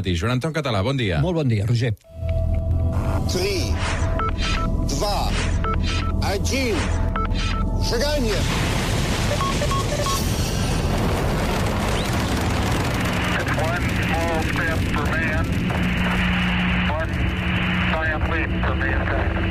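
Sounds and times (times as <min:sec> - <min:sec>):
speech: 0:00.0 - 0:02.2, 0:03.3 - 0:08.8, 0:13.8 - 0:16.3, 0:18.1 - 0:19.4
rocket launch roar: 0:08.3 - 0:18.0.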